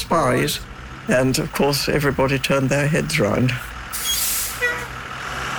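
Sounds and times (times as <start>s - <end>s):
large bus engine idling: 0.0s - 5.4s
speech: 0.1s - 3.7s
bus air brakes hissing: 3.9s - 4.9s.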